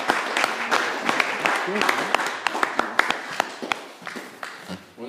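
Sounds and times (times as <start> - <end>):
crowd applauding with dense clapping: 0.0 - 4.7
speech: 1.7 - 2.2.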